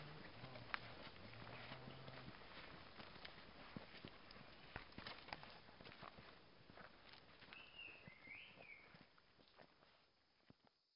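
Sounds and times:
footsteps crunching along a mountain trail: 0.0s - 10.8s.

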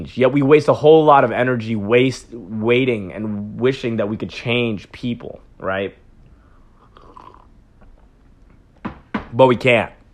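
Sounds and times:
speech: 0.0s - 6.0s, 9.3s - 10.0s
loud slurp: 6.8s - 7.5s
mouth and swallowing noises: 6.8s - 8.2s.

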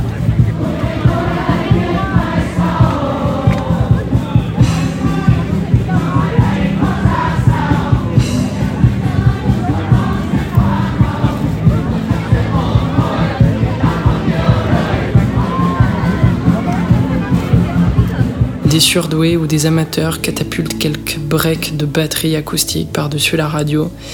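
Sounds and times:
large crowd singing along to a pop song: 0.0s - 23.5s
people shouting: 0.6s - 8.2s, 9.5s - 17.2s
speech: 18.8s - 24.1s.

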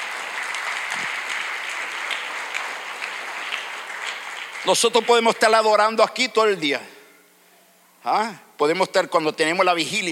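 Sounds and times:
church audience clapping loudly during worship: 0.0s - 6.1s
speech: 4.6s - 6.9s, 8.0s - 10.0s.

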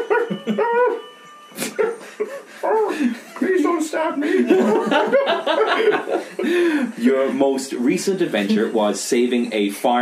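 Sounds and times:
dog barking and yipping: 0.0s - 1.1s
dog whining: 0.0s - 3.0s
laughter: 0.0s - 8.8s
speech: 0.5s - 10.0s.

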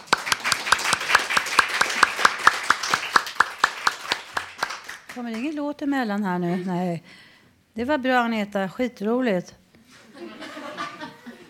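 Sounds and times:
audience applauding with rhythmic hand clapping: 0.0s - 5.6s
speech: 5.2s - 9.6s
laughter: 10.0s - 11.4s.

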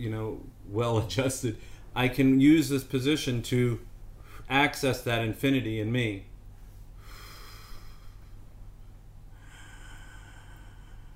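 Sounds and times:
speech: 0.0s - 3.9s, 4.5s - 6.3s
low steady hum: 0.0s - 11.1s
slow deep abdominal breathing: 1.6s - 1.9s, 4.2s - 4.5s, 6.6s - 11.1s.

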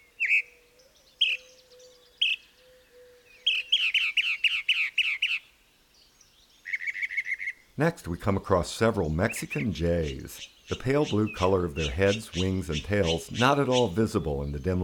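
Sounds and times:
Northern Mockingbird singing chirps and whistles: 0.0s - 5.4s, 9.1s - 14.8s
speech: 7.8s - 14.8s.

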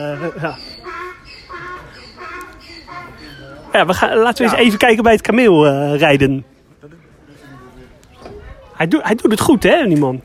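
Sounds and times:
speech: 0.0s - 0.8s, 3.7s - 6.5s, 8.8s - 10.2s
donkey braying: 0.0s - 3.6s
noisy outdoor background: 0.0s - 10.2s.

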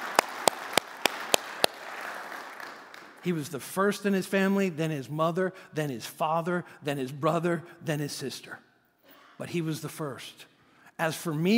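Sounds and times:
hand claps in unison: 0.0s - 3.2s
speech: 3.2s - 8.7s, 9.4s - 11.5s.

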